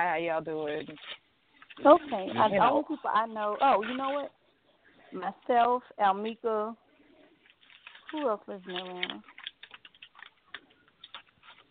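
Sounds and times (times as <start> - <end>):
speech: 0.0 - 1.2, 1.8 - 4.4, 5.1 - 6.8, 8.1 - 9.3
paper being handled and tossed: 0.7 - 4.2, 7.4 - 11.6.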